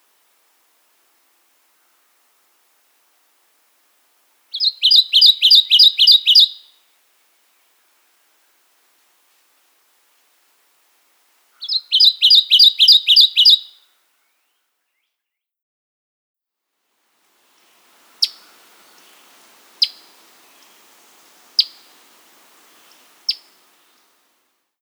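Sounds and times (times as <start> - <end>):
faint background hiss: 0.0 - 15.4, 16.5 - 24.8
Kentucky warbler song: 4.3 - 6.8, 11.3 - 15.4, 17.4 - 24.3
sharp Kentucky warbler call notes: 4.6 - 6.7, 11.6 - 13.8.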